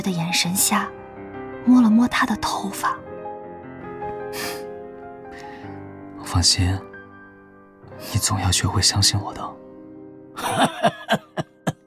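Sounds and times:
speech: 0:00.0 - 0:01.0, 0:01.6 - 0:03.0, 0:06.3 - 0:06.9, 0:08.0 - 0:09.6, 0:10.4 - 0:11.2
old man laughing: 0:10.4 - 0:11.8
old man coughing violently: 0:10.5 - 0:11.8.

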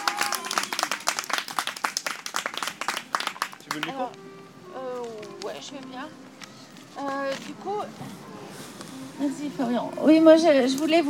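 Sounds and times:
audience applause at a live gathering: 0:00.0 - 0:04.1
speech: 0:03.7 - 0:06.3, 0:07.0 - 0:08.4, 0:09.2 - 0:11.0.

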